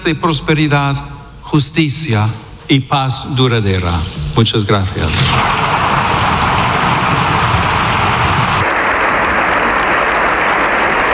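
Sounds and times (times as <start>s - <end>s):
speech: 0.0s - 5.8s
large crowd applauding in parliament: 6.1s - 11.1s.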